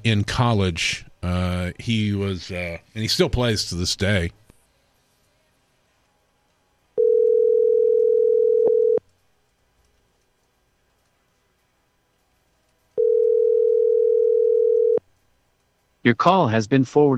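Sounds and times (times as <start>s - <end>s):
speech: 0.0s - 4.4s, 16.1s - 17.1s
telephone ringback tone while a call is being placed: 7.0s - 9.0s, 13.0s - 15.0s.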